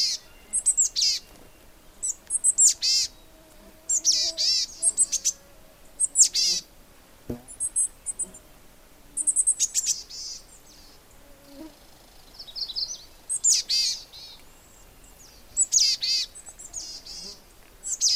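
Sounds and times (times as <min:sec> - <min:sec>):
small birds calling and chirping: 0:00.0 - 0:06.7, 0:07.3 - 0:18.1.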